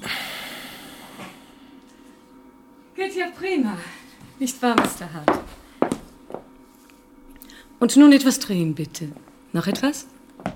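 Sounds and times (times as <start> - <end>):
patient exhaling after holding a deep breath: 0.0 - 1.7
speech: 3.0 - 5.6, 7.8 - 10.2.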